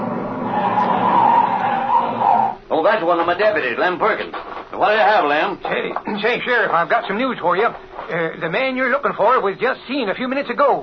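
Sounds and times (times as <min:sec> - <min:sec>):
car tires skidding: 0:00.0 - 0:02.6
speech: 0:02.9 - 0:10.8.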